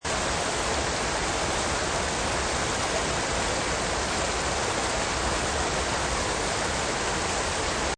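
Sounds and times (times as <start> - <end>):
medium size waterfall: 0.0 - 7.9.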